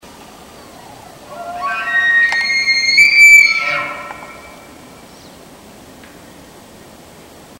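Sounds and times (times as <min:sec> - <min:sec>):
three-note elk bugle: 0:01.3 - 0:04.9.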